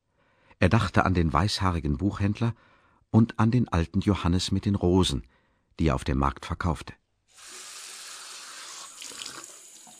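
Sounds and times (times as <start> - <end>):
speech: 0.6 - 7.5
water running from a bathroom tap: 7.4 - 9.9.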